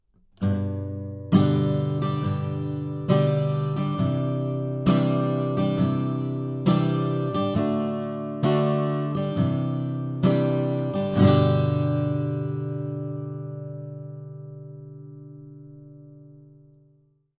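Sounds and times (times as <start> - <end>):
acoustic guitar through a bidirectional microphone: 0.0 - 17.2.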